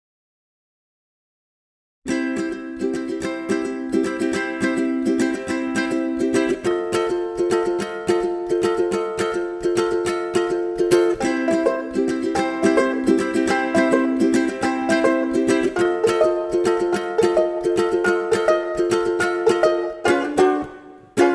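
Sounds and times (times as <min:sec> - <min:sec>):
ukulele playing: 0:02.1 - 0:21.3
kazoo playing: 0:19.6 - 0:21.3.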